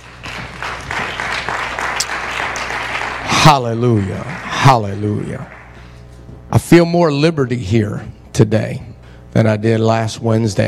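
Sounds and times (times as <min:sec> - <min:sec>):
worshippers clapping during a prayer service: 0:00.0 - 0:06.0
low hum: 0:00.0 - 0:10.6
speech: 0:03.5 - 0:05.6, 0:06.5 - 0:10.6.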